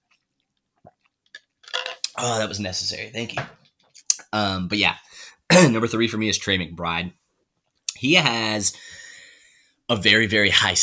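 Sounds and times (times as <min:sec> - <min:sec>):
sipping and swallowing a drink: 0:00.0 - 0:02.2
speech: 0:02.2 - 0:03.6, 0:04.3 - 0:07.2, 0:08.0 - 0:09.0, 0:09.9 - 0:10.8.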